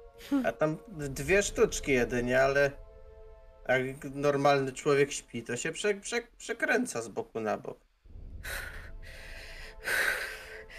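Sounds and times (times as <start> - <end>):
speech: 0.2 - 2.8, 3.7 - 7.8, 8.4 - 9.2
loud heavy panicked breathing: 8.4 - 10.7.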